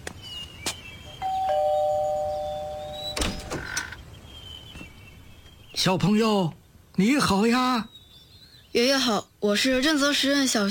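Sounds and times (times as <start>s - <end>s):
electronic doorbell ding-dong: 1.2s - 3.2s
speech: 5.8s - 7.9s, 8.7s - 10.7s.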